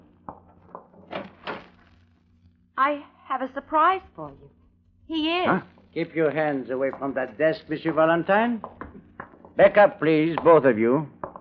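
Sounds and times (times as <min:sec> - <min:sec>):
closet door in an office being opened: 0:01.0 - 0:01.8
speech: 0:02.8 - 0:08.8, 0:09.6 - 0:11.2.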